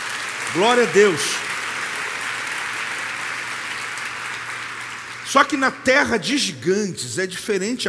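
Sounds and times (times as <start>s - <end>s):
large audience applauding continuously: 0.0s - 6.2s
speech: 0.5s - 1.4s, 5.3s - 7.8s.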